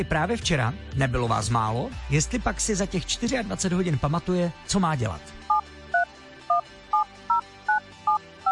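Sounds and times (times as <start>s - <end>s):
speech: 0.0s - 5.4s
telephone keypad dual-tone dialing beeps: 5.5s - 8.5s.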